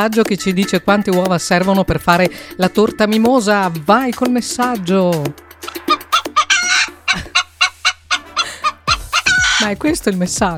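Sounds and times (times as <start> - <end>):
speech: 0.0 - 5.9, 9.6 - 10.5
hen clucking after laying an egg: 5.6 - 10.5.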